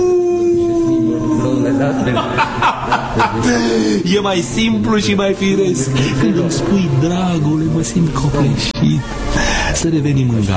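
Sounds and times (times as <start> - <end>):
person howling like a dog: 0.0 - 2.4
laughter: 1.2 - 4.0, 5.6 - 7.4
speech: 3.4 - 10.5.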